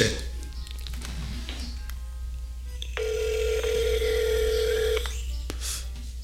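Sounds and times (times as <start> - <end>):
low electrical hum: 0.0 - 6.2
ringback tone from an outgoing phone call: 2.8 - 5.2.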